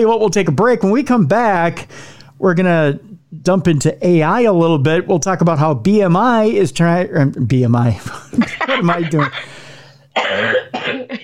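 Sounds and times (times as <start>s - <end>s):
speech: 0.0s - 9.6s, 10.2s - 11.2s
laughter: 8.1s - 9.7s
person coughing: 8.7s - 11.2s.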